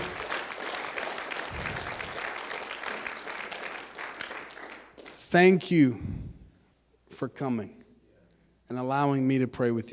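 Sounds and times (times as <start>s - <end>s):
audience applauding with many hands clapping: 0.0s - 5.2s
speech: 5.3s - 6.1s, 7.2s - 7.8s, 8.7s - 9.9s.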